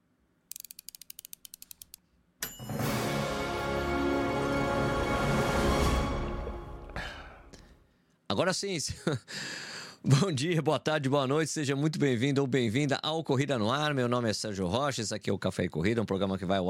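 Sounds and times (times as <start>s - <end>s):
ticking clicks of a radio show jingle: 0.5s - 2.0s
radio show jingle music: 2.4s - 7.2s
speech: 8.3s - 16.6s.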